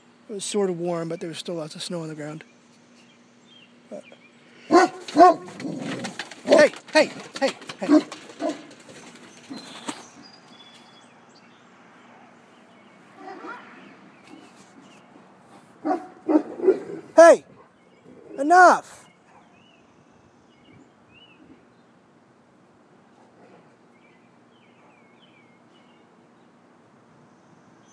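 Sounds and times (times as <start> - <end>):
speech: 0.3 - 2.5, 4.8 - 6.0, 6.6 - 8.6, 18.5 - 19.0
two dogs barking and yipping while playing: 4.6 - 10.9, 13.1 - 15.0, 15.8 - 17.8, 18.5 - 19.8.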